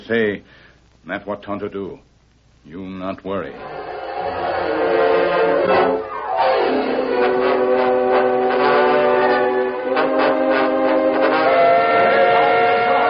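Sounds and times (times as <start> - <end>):
speech: 0.1 - 5.0
steam train whistle blowing as the first passenger train to Dry Creek prepares to depart: 3.6 - 13.0.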